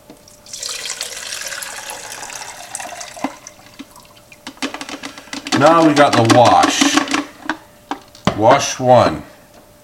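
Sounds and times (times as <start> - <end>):
liquid pouring into a beaker: 0.2 - 4.4
speech: 5.6 - 7.0, 8.4 - 9.3.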